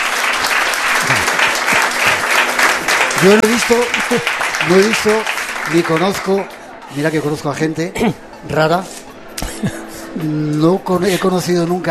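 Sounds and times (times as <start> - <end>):
audience applause: 0.0 - 6.6
speech: 3.2 - 9.0, 9.6 - 11.8.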